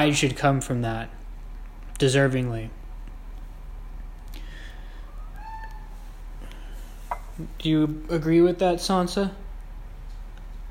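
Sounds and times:
speech: 0:00.0 - 0:01.2, 0:02.0 - 0:02.8, 0:07.4 - 0:09.4
steady hiss: 0:00.0 - 0:10.7
pet cat giving a drawn-out meow: 0:05.0 - 0:06.1.

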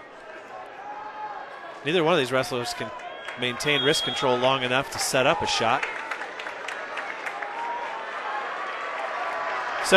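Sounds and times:
large crowd cheering at a state final wrestling match: 0:00.0 - 0:09.9
speech: 0:01.8 - 0:06.0
people clapping: 0:02.5 - 0:09.9.

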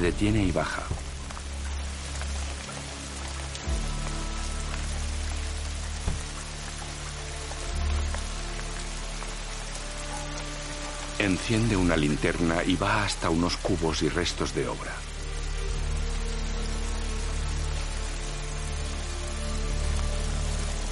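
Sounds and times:
speech: 0:00.0 - 0:01.0, 0:11.2 - 0:15.1
steady rain falling at night: 0:00.0 - 0:20.8
brief dull thumps: 0:06.0 - 0:06.3.

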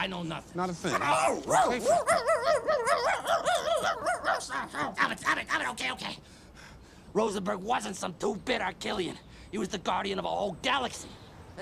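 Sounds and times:
speech: 0:00.0 - 0:06.3, 0:07.1 - 0:11.6
small dog yipping and whimpering: 0:01.5 - 0:05.0.

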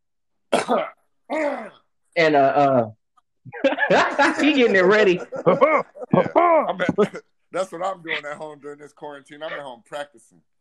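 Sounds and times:
forced cough: 0:00.5 - 0:01.8
speech: 0:00.7 - 0:10.5
laughter: 0:03.5 - 0:08.8.

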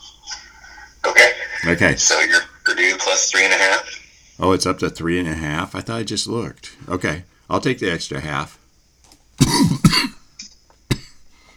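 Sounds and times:
speech: 0:01.6 - 0:08.6
person clearing throat: 0:09.4 - 0:10.3, 0:10.9 - 0:11.3
person coughing: 0:09.4 - 0:10.3, 0:10.9 - 0:11.3.

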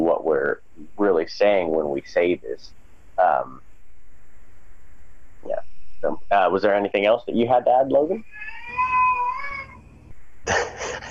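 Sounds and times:
speech: 0:01.3 - 0:03.6, 0:06.3 - 0:08.5
young boy wailing, fighting bedtime: 0:08.4 - 0:09.8
laughter: 0:10.5 - 0:11.1.

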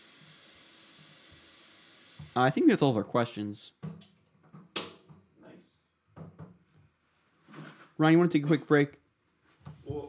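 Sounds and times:
water running from a tap: 0:00.0 - 0:02.6
speech: 0:02.4 - 0:03.8, 0:08.0 - 0:09.0.

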